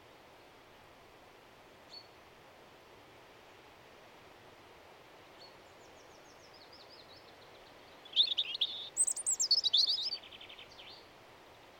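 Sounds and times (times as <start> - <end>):
soft steady hiss: 0.0 - 11.7
bird giving faint single chirps and a thin trill: 8.0 - 11.0.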